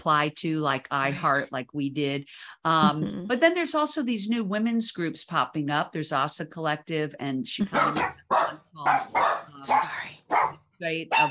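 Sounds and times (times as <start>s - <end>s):
speech: 0.0s - 10.0s, 10.8s - 11.2s
dog barking sharply: 7.8s - 11.2s.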